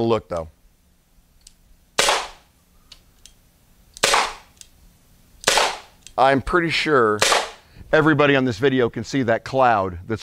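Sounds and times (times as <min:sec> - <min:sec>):
speech: 0:00.0 - 0:00.6, 0:06.2 - 0:10.2
non-lethal launcher firing shots into a foam target: 0:02.0 - 0:02.5, 0:04.0 - 0:04.5, 0:05.4 - 0:06.0, 0:07.2 - 0:07.6
faint mechanical clicks: 0:02.8 - 0:04.8.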